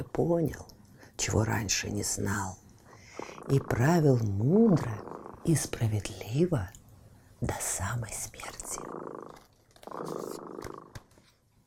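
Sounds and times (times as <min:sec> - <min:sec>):
speech: 0:00.0 - 0:02.6, 0:03.4 - 0:06.8, 0:07.4 - 0:10.8
cat purring: 0:02.9 - 0:05.9, 0:08.3 - 0:11.0.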